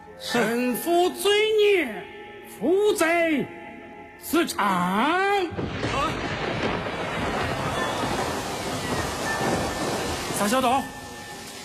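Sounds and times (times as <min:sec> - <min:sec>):
speech: 0:00.2 - 0:03.6, 0:04.2 - 0:06.7, 0:10.4 - 0:11.0
heavy rain pouring down: 0:05.6 - 0:11.6.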